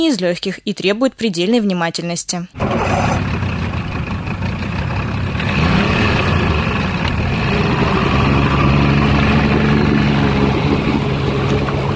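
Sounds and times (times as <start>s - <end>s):
speech: 0.0s - 3.4s
motorboat engine running during a search for illegal fishing nets: 2.6s - 8.4s, 9.1s - 11.9s.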